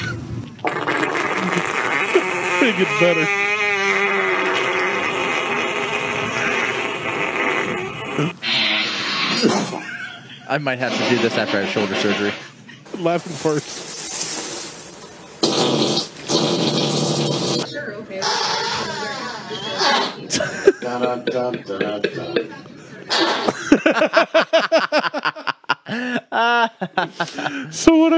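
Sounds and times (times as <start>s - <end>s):
farts after colonoscopy: 0.6s - 9.8s, 10.8s - 12.5s, 15.4s - 20.2s, 23.1s - 23.6s
people chuckling: 1.2s - 3.4s, 4.6s - 6.9s, 9.4s - 13.0s, 19.0s - 21.5s, 22.4s - 27.8s
speech: 2.7s - 3.4s, 8.2s - 8.4s, 10.5s - 13.7s, 21.0s - 22.7s, 27.0s - 28.1s.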